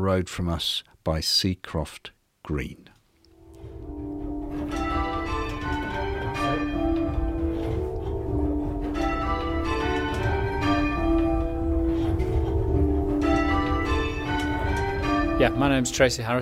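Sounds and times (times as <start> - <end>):
speech: 0.0 - 2.9, 15.4 - 16.3
six church bells pealing as bell ringers practise: 3.4 - 16.3.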